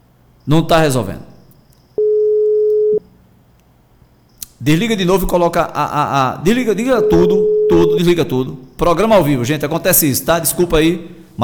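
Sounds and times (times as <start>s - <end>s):
speech: 0.5s - 1.3s, 4.6s - 11.4s
telephone call tone on an unanswered call: 2.0s - 3.0s, 7.0s - 8.1s.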